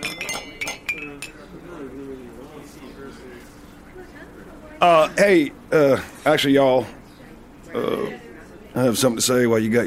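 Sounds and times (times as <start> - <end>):
glasses clinking in a toast: 0.0 - 1.5
murmured talk: 0.0 - 9.8
speech: 3.2 - 7.0, 7.7 - 8.2, 8.8 - 9.8.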